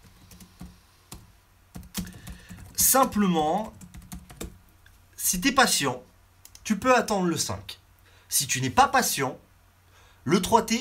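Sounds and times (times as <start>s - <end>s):
slow typing on a computer keyboard: 0.0s - 4.6s
speech: 2.8s - 3.8s, 5.3s - 6.1s, 6.7s - 9.4s, 10.2s - 10.7s.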